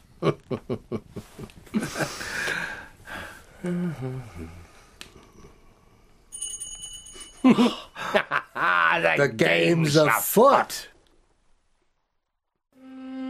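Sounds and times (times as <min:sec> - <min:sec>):
speech: 0:00.2 - 0:04.6, 0:07.4 - 0:10.9
doorbell ringing: 0:06.4 - 0:07.5.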